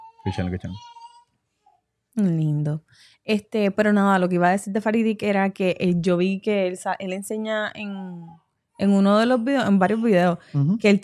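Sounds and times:
baby babbling alone in its crib: 0.0s - 1.2s
speech: 0.2s - 0.9s, 2.2s - 11.0s.

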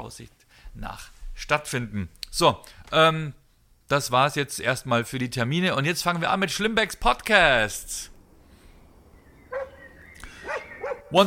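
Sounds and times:
speech: 0.0s - 8.1s
dog barking: 9.5s - 9.8s, 10.4s - 11.2s.

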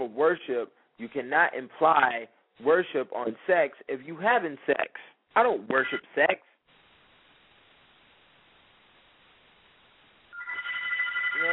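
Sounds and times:
speech: 0.0s - 6.5s
phone ringing with electronic tones: 5.8s - 6.1s, 10.3s - 11.5s.

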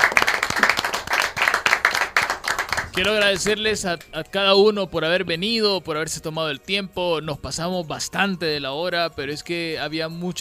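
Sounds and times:
crowd applauding guests at a gathering: 0.0s - 3.8s
speech: 3.0s - 10.3s.

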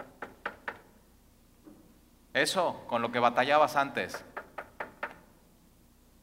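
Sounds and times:
sharp hollow raps on a door: 0.0s - 0.8s, 4.1s - 5.2s
speech: 2.4s - 4.3s.

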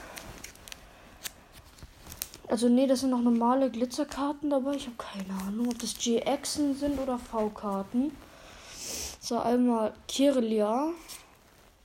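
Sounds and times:
crinkly plastic packaging of trading cards torn and pulled open: 0.1s - 2.5s
speech: 2.5s - 8.3s, 9.3s - 11.2s.

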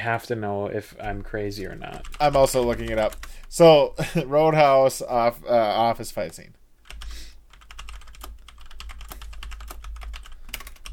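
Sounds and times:
speech: 0.0s - 6.6s
rapid typing on a computer keyboard: 1.2s - 3.7s, 6.8s - 10.9s.

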